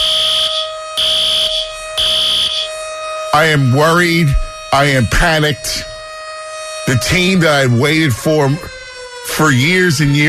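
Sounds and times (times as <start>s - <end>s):
steady electronic tone: 0.0s - 2.8s
loud shrill alarm blaring: 0.0s - 10.2s
speech: 3.4s - 5.9s, 6.9s - 8.8s, 9.4s - 10.2s.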